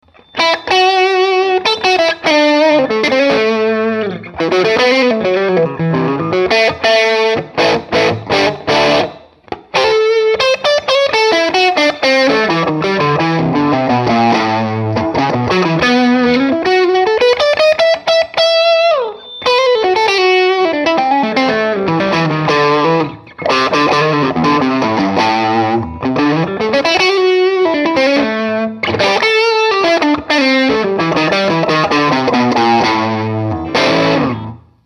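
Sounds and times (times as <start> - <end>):
dirty guitar tone from wide range neck and bridge pickups: 0.0 - 34.8.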